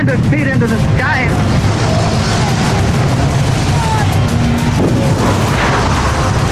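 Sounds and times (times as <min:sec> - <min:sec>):
speech: 0:00.0 - 0:01.4
airship explosion and fire roar: 0:00.8 - 0:06.5
indistinct shouting voices: 0:01.4 - 0:06.5.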